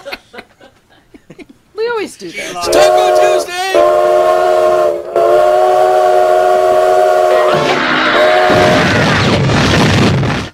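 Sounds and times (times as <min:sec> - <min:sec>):
laughter: 0:00.0 - 0:01.6, 0:02.3 - 0:03.4, 0:07.3 - 0:08.9
speech: 0:02.0 - 0:04.0
loud sustained train whistle blaring: 0:02.4 - 0:09.0
chaotic roaring crash of grinding metal from a derailing train: 0:07.5 - 0:10.5
rumbling debris: 0:07.7 - 0:10.5.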